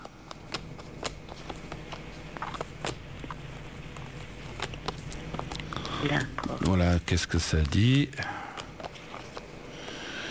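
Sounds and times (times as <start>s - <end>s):
cards shuffled and drawn for a card reading: 0.0s - 9.6s
speech: 6.0s - 8.4s.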